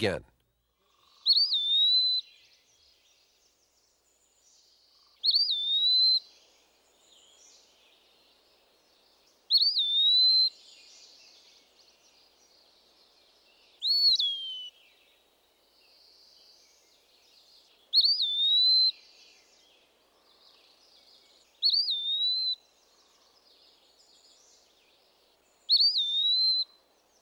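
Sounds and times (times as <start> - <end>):
speech: 0.0 - 0.3
Eastern Wood Pewee singing: 1.2 - 2.7, 5.2 - 6.4, 9.5 - 11.6, 13.8 - 15.0, 17.9 - 19.5, 21.6 - 22.6, 25.7 - 26.8.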